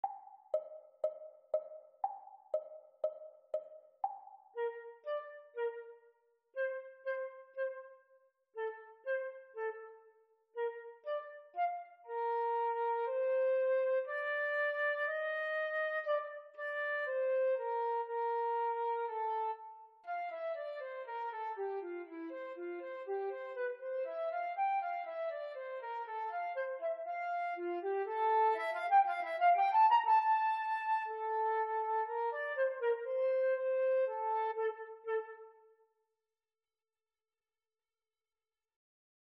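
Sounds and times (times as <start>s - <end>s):
flute duet: 4.0s - 35.8s.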